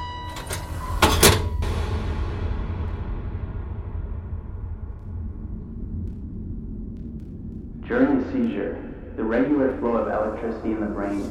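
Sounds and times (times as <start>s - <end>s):
heavy metal door creaking on its hinges: 0.0s - 1.8s
low rumble: 0.0s - 11.2s
speech: 7.9s - 11.2s.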